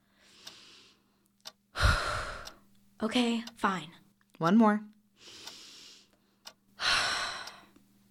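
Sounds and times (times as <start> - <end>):
person taking a slow deep breath to calm down: 0.0 - 1.2, 1.8 - 2.6, 5.2 - 6.2, 6.8 - 7.8
speech: 3.0 - 5.4.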